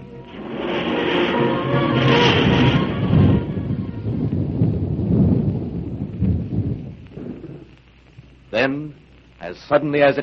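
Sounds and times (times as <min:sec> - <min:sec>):
loud rolling thunder: 0:00.0 - 0:07.8
steady rain: 0:00.0 - 0:10.2
speech: 0:08.6 - 0:10.2.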